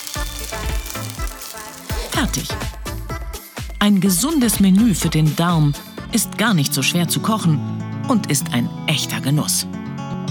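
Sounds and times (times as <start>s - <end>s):
salmon frying in extra virgin olive oil: 0.0s - 3.1s
speech: 2.2s - 2.8s, 3.8s - 9.8s.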